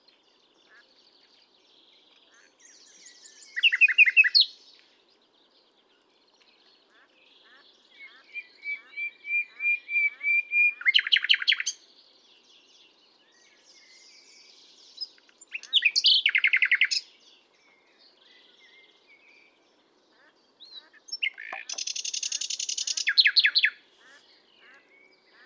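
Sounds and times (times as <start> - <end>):
Common nightingale song: 0.0 - 25.4.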